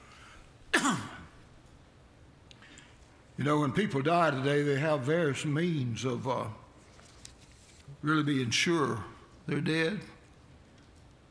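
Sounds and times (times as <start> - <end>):
single short harsh cough: 0.7 - 1.4
speech: 0.8 - 1.2, 3.4 - 6.6, 8.0 - 10.2.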